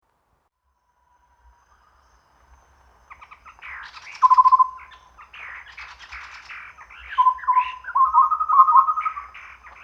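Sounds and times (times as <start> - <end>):
Chestnut-rumped babbler calling at Danum: 3.7 - 9.8.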